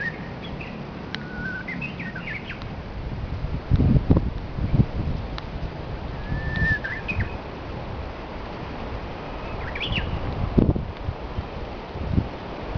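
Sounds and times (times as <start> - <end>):
faint Japanese bush warbler song: 0.0 - 2.7, 6.1 - 7.5, 9.3 - 10.3
low wind: 0.0 - 12.7.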